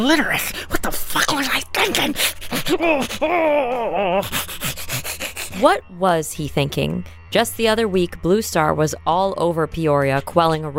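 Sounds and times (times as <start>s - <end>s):
speech: 0.0s - 4.6s, 5.6s - 10.7s
person hyperventilating and gasping for air: 2.2s - 5.7s
drawn-out wavering groan: 2.5s - 5.7s.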